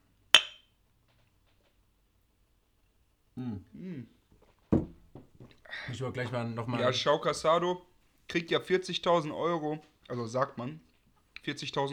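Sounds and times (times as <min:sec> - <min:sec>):
drinking glasses clinking in a toast: 0:00.4 - 0:00.6
speech: 0:03.4 - 0:04.2, 0:05.8 - 0:11.9.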